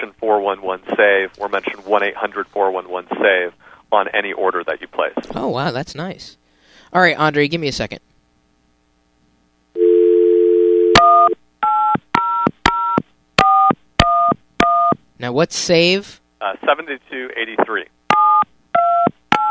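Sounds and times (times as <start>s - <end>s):
recorded voice: 0.0s - 8.0s, 15.2s - 18.0s
speech: 0.2s - 8.1s, 15.2s - 17.9s
telephone dial tone: 9.8s - 13.7s, 18.1s - 19.4s.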